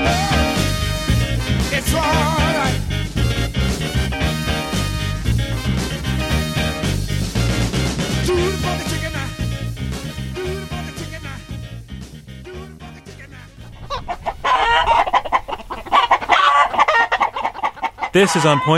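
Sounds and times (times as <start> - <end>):
upbeat music track: 0.0 - 13.7
chickens clucking and crowing: 13.6 - 18.7
speech: 18.2 - 18.7.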